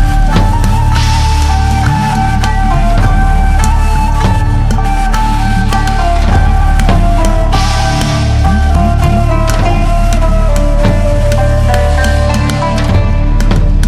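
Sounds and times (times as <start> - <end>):
instrumental movie theme music with melodic tones and rhythmic percussion: 0.0 - 13.8.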